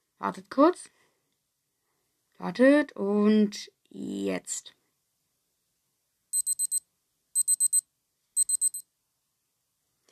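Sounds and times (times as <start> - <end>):
speech: 0.2 - 1.0, 2.4 - 4.8
alarm clock beeping to signal the end of a timer: 6.4 - 6.8, 7.4 - 7.8, 8.4 - 8.8.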